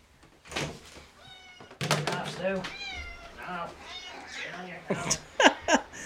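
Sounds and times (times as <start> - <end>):
old male cat meowing: 1.2 - 1.8, 2.6 - 4.8
laughter: 4.9 - 6.0.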